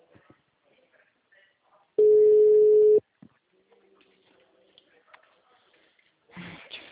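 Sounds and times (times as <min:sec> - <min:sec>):
telephone busy-signal beep: 0:02.0 - 0:03.0.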